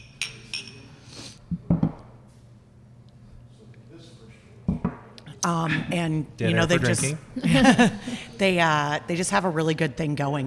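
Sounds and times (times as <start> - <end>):
glasses clinking together in a toast: 0.0 - 0.9
low murmur of voices: 3.5 - 7.4
speech: 5.4 - 10.4
laughter: 6.6 - 8.4.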